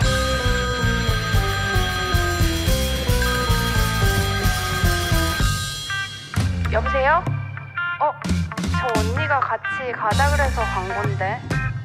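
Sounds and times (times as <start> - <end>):
telephone ringing with an electronic melody of bell-like tones: 0.0 - 6.3
speech: 7.0 - 7.3, 8.0 - 11.6.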